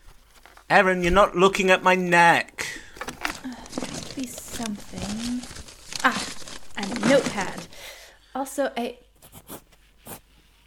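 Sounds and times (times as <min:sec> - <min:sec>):
rummaging through used pens in search of a pencil: 0:00.0 - 0:01.3, 0:02.6 - 0:07.9
speech: 0:00.7 - 0:02.6, 0:08.6 - 0:09.0
scrape: 0:09.2 - 0:10.6.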